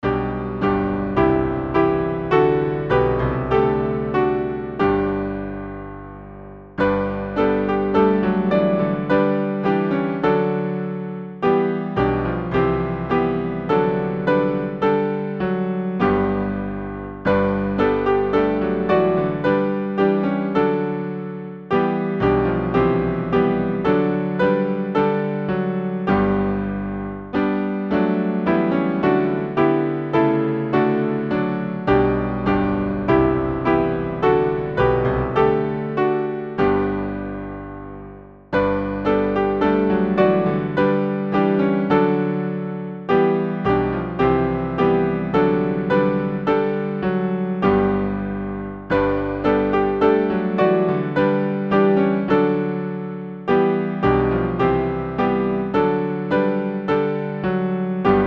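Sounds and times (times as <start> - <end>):
piano playing a hymn: 0.0 - 58.2.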